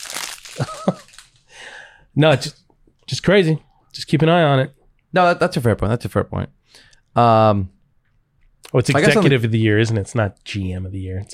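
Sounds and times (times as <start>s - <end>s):
paper rustling and crinkling: 0.0s - 1.4s
speech: 0.6s - 1.0s, 2.2s - 7.8s, 8.7s - 11.3s.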